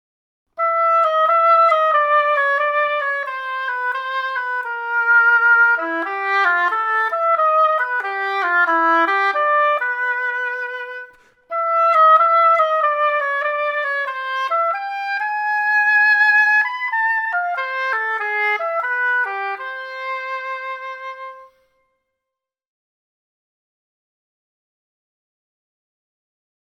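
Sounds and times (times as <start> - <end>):
hautbois: 0.6 - 22.0.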